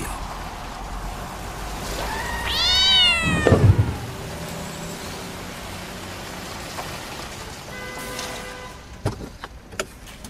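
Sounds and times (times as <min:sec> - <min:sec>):
cat meowing: 0:02.0 - 0:04.2
speech: 0:03.4 - 0:03.8.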